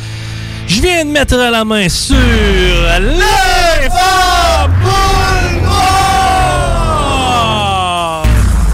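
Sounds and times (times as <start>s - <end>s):
speech: 0.7s - 5.9s
crowd cheering and shouting during a bingo game in Quebec: 2.1s - 8.6s.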